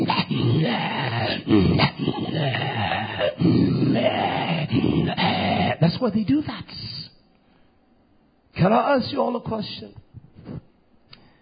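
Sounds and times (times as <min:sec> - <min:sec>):
man imitating growling and groaning: 0:00.0 - 0:05.9
speech: 0:00.4 - 0:05.2, 0:06.0 - 0:07.0, 0:08.6 - 0:10.6.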